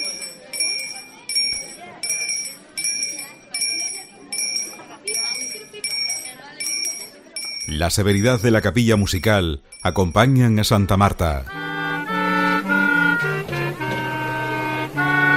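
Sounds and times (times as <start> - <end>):
small procession bell ringing on Holy Thursday: 0.0 - 8.4, 9.0 - 10.4
ambient street noise: 0.0 - 15.3
murmuring crowd: 0.0 - 15.3
speech: 7.7 - 11.6.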